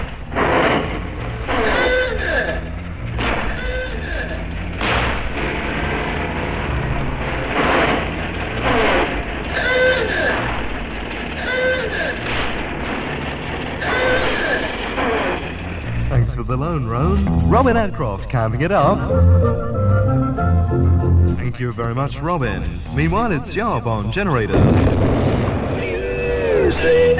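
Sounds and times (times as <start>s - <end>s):
old motor car engine chugging and rattling: 0.0s - 27.1s
speech: 17.5s - 25.6s, 26.8s - 27.1s.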